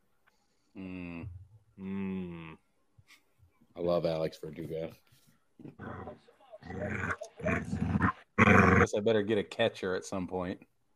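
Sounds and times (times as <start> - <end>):
speech: 3.9 - 8.0, 8.8 - 10.7
dog growling: 5.7 - 8.9.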